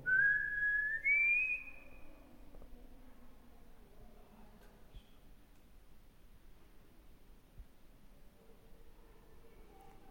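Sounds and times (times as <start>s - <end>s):
person whistling rising notes: 0.0s - 1.8s.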